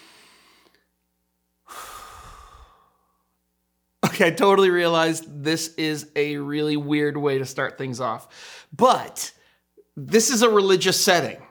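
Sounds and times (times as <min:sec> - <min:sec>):
deep slow breath during a guided relaxation exercise: 0:00.0 - 0:00.9, 0:01.7 - 0:03.3
speech: 0:04.2 - 0:09.4, 0:10.0 - 0:11.5.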